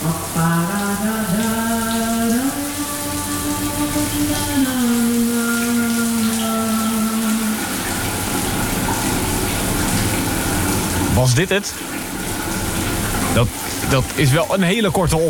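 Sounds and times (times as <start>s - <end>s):
high whining pipe tone: 0.0s - 8.2s
shower tap spraying water: 0.0s - 15.2s
speech: 11.2s - 11.9s, 13.4s - 15.2s.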